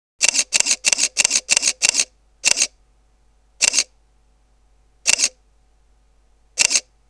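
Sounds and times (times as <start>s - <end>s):
Olympus E-400 camera shutter firing continuously: 0.2s - 2.7s, 3.6s - 3.9s, 5.1s - 5.4s, 6.6s - 6.9s.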